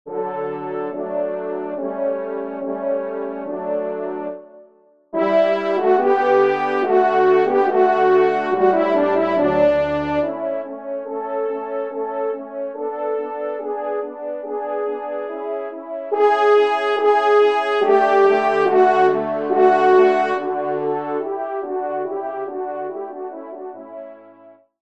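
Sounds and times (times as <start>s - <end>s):
horn trio playing: 0.1s - 4.3s, 5.2s - 24.0s.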